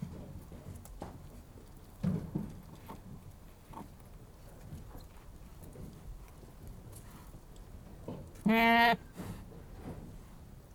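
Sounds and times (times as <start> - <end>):
quiet rustling: 0.0 - 10.7
Anglo-Nubian goat bleating: 8.4 - 9.1
speech: 8.5 - 9.0.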